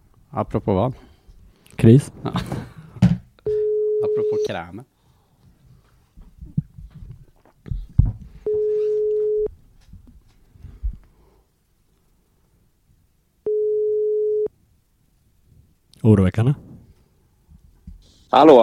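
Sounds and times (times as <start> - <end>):
speech: 0.3 - 1.1, 1.8 - 2.7, 4.1 - 4.9, 16.0 - 16.6, 18.3 - 18.6
steady clear phone ringback tones: 3.5 - 4.5, 8.4 - 9.5, 13.5 - 14.5.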